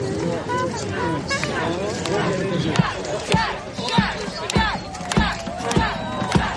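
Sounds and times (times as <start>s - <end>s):
lively crowd cheering and shouting at a procession: 0.1s - 6.5s
sharp claps or thumps: 2.0s - 6.5s.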